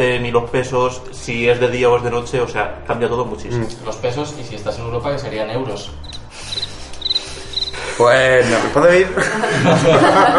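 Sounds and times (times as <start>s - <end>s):
speech: 0.0s - 6.2s, 8.0s - 10.3s
crickets chirping: 5.9s - 8.0s
laughter: 7.3s - 10.3s.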